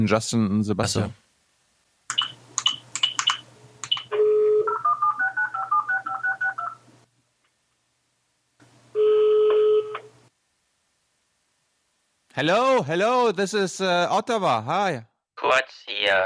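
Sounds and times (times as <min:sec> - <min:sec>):
speech: 0:00.0 - 0:01.2, 0:12.4 - 0:16.2
telephone keypad tones as a number is dialed: 0:02.1 - 0:06.8
steady evenly spaced telephone beeping and a longer tone: 0:03.1 - 0:06.8, 0:09.0 - 0:10.1.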